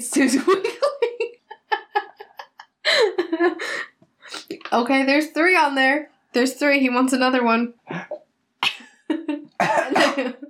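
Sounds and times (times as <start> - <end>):
speech: 0.0 - 0.9, 4.8 - 7.8
laughter: 0.2 - 3.8, 9.1 - 10.4
pet coughing and choking on pieces of food: 9.6 - 10.4.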